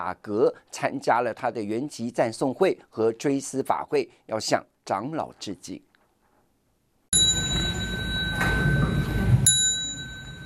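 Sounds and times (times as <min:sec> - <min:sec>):
speech: 0:00.0 - 0:05.9
temple bell ringing: 0:07.2 - 0:10.4.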